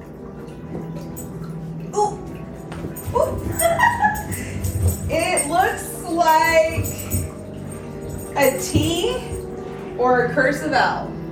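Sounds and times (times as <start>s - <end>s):
running water: 0.0s - 11.2s
dog whimpering and yipping: 3.0s - 6.0s
speech: 8.4s - 9.3s, 10.0s - 11.1s.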